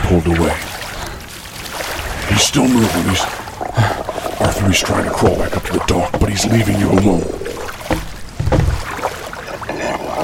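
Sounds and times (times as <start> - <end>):
faint wind: 0.0 - 10.2
soft water sloshing: 0.0 - 10.2
splashy rowing strokes of a small rowboat: 0.0 - 10.2
speech: 0.1 - 0.7, 2.4 - 7.5
low thuds against a rowboat hull: 6.9 - 9.1.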